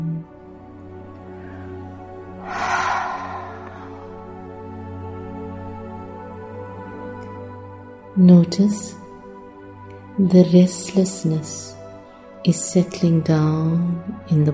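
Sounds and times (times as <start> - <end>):
slow exhale with a soft breathy ha sound: 2.4 - 4.6
speech: 8.2 - 9.0, 10.2 - 11.8, 12.4 - 14.5.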